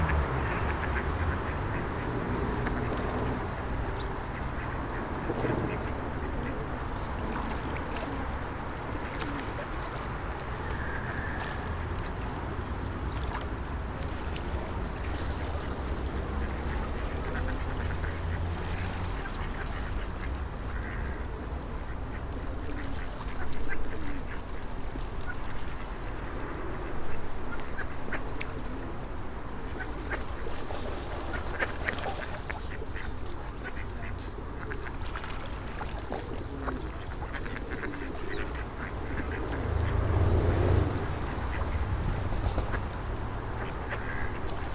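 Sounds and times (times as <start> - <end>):
ducks quacking while fed by passersby: 0.0 - 6.8, 15.0 - 24.5, 29.6 - 44.7
low traffic rumble of passing cars and buses: 0.0 - 44.7
pigeons fed by passersby: 0.6 - 44.7.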